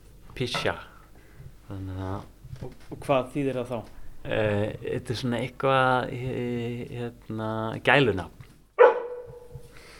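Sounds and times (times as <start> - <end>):
speech: 0.4 - 0.9, 1.7 - 8.4
dog barking: 8.8 - 9.5.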